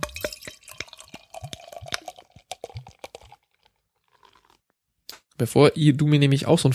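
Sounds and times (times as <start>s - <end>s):
beer pouring into a glass: 0.0s - 4.6s
speech: 5.4s - 6.7s.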